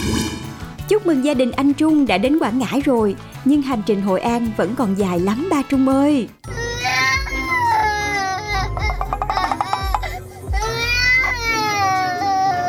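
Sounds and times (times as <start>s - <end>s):
speech: 0.9s - 6.4s
young child crying on a family road trip: 6.5s - 12.6s.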